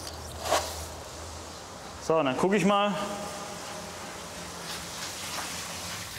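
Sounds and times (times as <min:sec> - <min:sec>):
speech: 0:02.1 - 0:03.4
water running and splashing, flowing on demand for elephants: 0:03.6 - 0:06.1.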